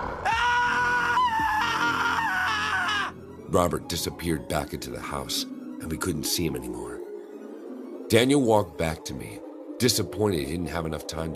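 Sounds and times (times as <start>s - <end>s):
man in costume screaming at the top of his lungs: 0.0s - 3.1s
speech: 3.5s - 7.0s, 8.1s - 11.3s.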